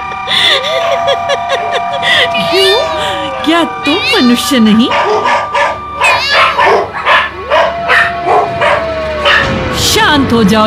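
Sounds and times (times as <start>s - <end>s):
laughter: 0.2s - 3.3s
speech: 3.6s - 5.2s, 10.2s - 10.6s
dogs barking: 4.8s - 9.5s.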